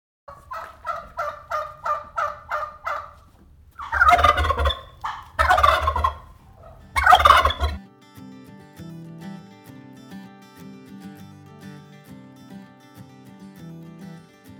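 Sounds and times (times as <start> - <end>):
wild turkey gobbling: 0.3 - 7.8
music: 6.8 - 14.5.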